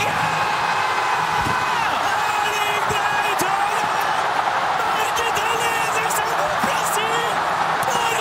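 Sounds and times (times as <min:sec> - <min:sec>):
crowd at a stadium cheering a football goal on a big screen: 0:00.0 - 0:08.2
TV football commentator yelling excitedly: 0:01.8 - 0:08.2.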